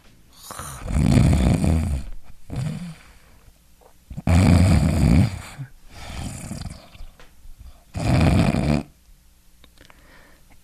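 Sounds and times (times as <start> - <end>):
person imitating loud rasping snoring: 0.4 - 3.0, 4.2 - 7.0, 7.9 - 8.9.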